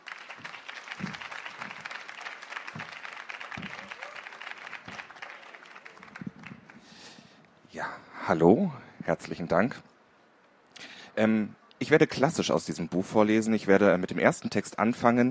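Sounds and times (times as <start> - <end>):
audience applause welcoming an author: 0.0 - 7.2
speech: 7.8 - 9.9, 11.2 - 15.2.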